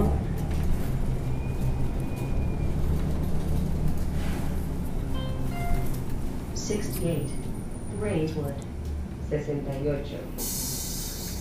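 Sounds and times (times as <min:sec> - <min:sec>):
city bus engine rumble: 0:00.0 - 0:11.3
road noise inside a moving city bus: 0:00.0 - 0:11.3
brief faint tones: 0:05.2 - 0:06.0.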